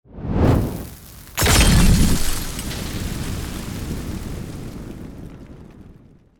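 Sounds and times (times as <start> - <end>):
fire from Molotov cocktail burning: 0.2 - 6.3
Molotov cocktail glass breaking in war: 1.0 - 3.6.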